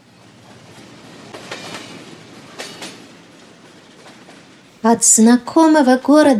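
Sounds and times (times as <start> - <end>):
train rolling steadily along the rails: 0.0 - 5.9
train wheels clickety-clack over rail joints: 0.2 - 4.8
speech: 4.8 - 6.3.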